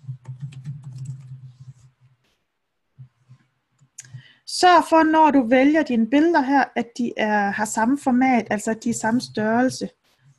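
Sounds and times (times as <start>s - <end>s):
typing on a computer keyboard to enter text into a field: 0.0s - 1.9s
speech: 4.5s - 10.0s.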